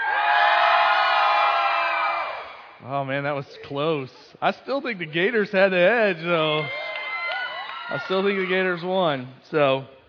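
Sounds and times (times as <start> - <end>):
large audience roaring and shouting: 0.0 - 2.8, 5.0 - 9.3
speech: 2.9 - 6.8, 7.9 - 10.0.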